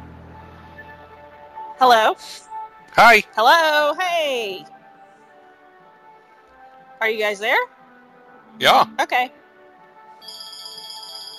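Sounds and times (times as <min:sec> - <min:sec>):
speech: 0:01.8 - 0:04.7, 0:07.0 - 0:07.8, 0:08.6 - 0:09.4
mobile phone bright electronic ringtone: 0:10.2 - 0:11.3.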